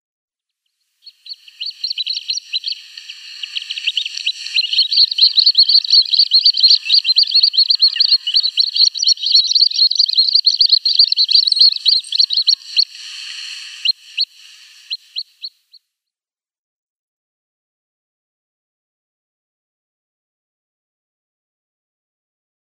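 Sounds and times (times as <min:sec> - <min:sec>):
downy young little grebe calling: 0:01.0 - 0:15.8.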